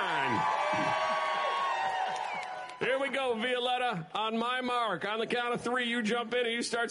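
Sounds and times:
audience clapping: 0:00.0 - 0:03.4
audience cheering and whooping for contestants in a swimming race: 0:00.0 - 0:03.7
speech: 0:03.2 - 0:06.9.

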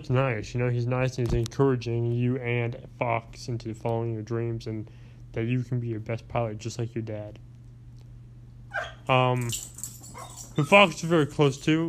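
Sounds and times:
speech: 0:00.0 - 0:07.5, 0:08.8 - 0:09.7, 0:10.6 - 0:11.8
dog whimpering and whining: 0:08.7 - 0:09.1, 0:10.2 - 0:11.1.

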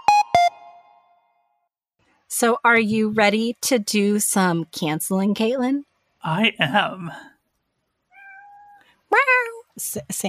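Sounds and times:
speech: 0:02.3 - 0:07.3, 0:09.8 - 0:10.2
cat meowing: 0:08.1 - 0:08.8.

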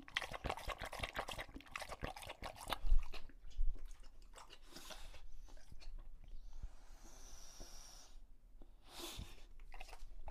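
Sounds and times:
male English Bulldog drinking from a water bowl: 0:00.0 - 0:05.9.

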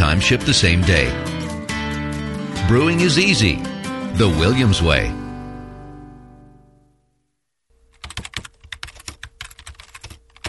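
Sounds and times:
speech: 0:00.2 - 0:01.3, 0:02.7 - 0:05.2
typing on a computer keyboard writing an online review: 0:07.9 - 0:10.4.

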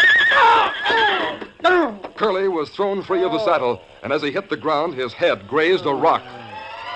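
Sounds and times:
horse whinnying as it stumbles and falls on a forest trail: 0:00.0 - 0:02.0
speech: 0:02.2 - 0:06.4.

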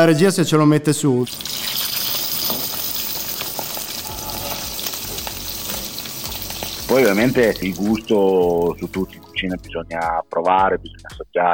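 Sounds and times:
speech: 0:00.0 - 0:01.8, 0:06.9 - 0:11.5
butter sizzling and crackling in a hot pan while browning: 0:01.3 - 0:09.5.

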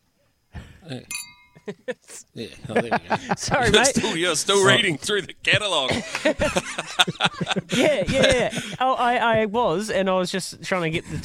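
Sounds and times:
speech: 0:00.9 - 0:11.2
glasses clinking in a cheers toast: 0:01.1 - 0:01.7
laughter: 0:01.6 - 0:08.9.

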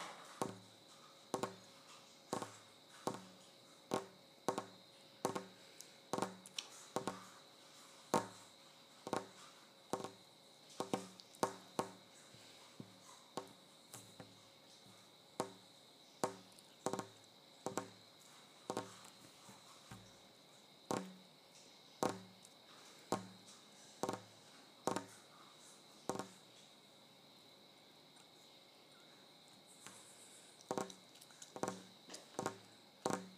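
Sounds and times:
tapping on kitchen counter: 0:00.4 - 0:00.6, 0:01.3 - 0:01.6, 0:02.3 - 0:07.4, 0:08.1 - 0:08.4, 0:09.0 - 0:10.2, 0:10.8 - 0:12.0, 0:12.8 - 0:14.4, 0:15.4 - 0:15.6, 0:16.2 - 0:18.0, 0:18.7 - 0:19.1, 0:20.9 - 0:21.2, 0:22.0 - 0:22.4, 0:23.1 - 0:25.2, 0:26.1 - 0:26.4, 0:30.6 - 0:33.3.

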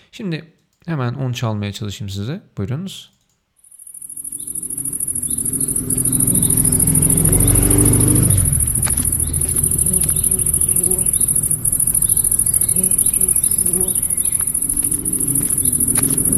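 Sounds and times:
speech: 0:00.2 - 0:03.2
bee buzzing: 0:04.0 - 0:16.3
low motor rumble: 0:04.4 - 0:16.3
soft footsteps: 0:08.4 - 0:16.3.

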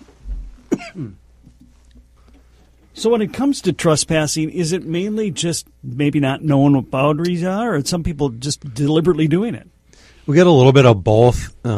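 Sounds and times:
single sharp cough with raspy voiced trailing sound: 0:00.7 - 0:01.2
speech: 0:00.9 - 0:01.2, 0:03.0 - 0:09.7, 0:10.3 - 0:11.7.

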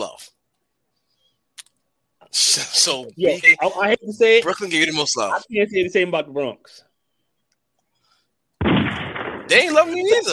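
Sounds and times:
speech: 0:02.3 - 0:06.9, 0:09.5 - 0:10.3
single loud gunshot sound effect: 0:08.6 - 0:10.3.

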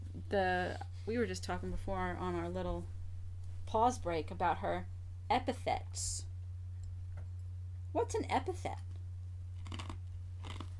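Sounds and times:
steady low hum: 0:00.0 - 0:10.7
speech: 0:00.3 - 0:03.0, 0:03.7 - 0:06.3, 0:07.9 - 0:08.9
ice cubes crunching as they are bitten and chewed: 0:09.6 - 0:10.7.

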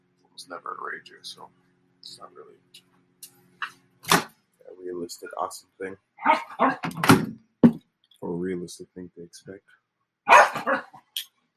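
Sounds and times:
speech: 0:00.4 - 0:02.9, 0:04.7 - 0:07.4, 0:08.2 - 0:09.8
dog barking: 0:06.2 - 0:06.8, 0:10.3 - 0:11.0.

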